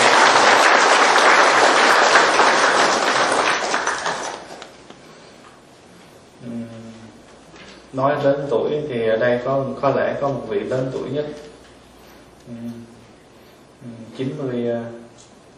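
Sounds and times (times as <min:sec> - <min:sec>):
large audience applause: 0:00.0 - 0:04.8
speech: 0:08.0 - 0:11.6, 0:12.5 - 0:12.9, 0:13.8 - 0:15.3.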